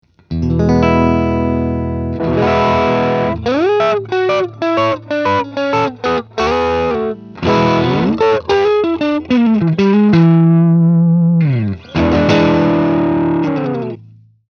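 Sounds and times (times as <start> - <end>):
mid gain 808 bass: 0.4 - 14.0.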